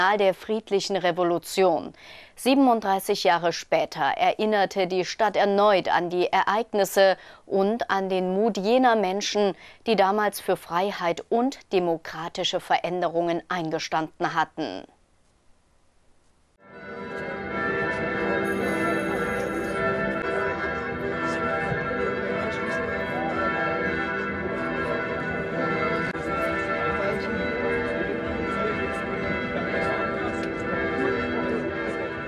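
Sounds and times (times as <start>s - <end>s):
speech: 0.0s - 15.0s
church bells ringing in a full peal: 16.6s - 32.2s
faint crowd murmur: 17.1s - 32.2s.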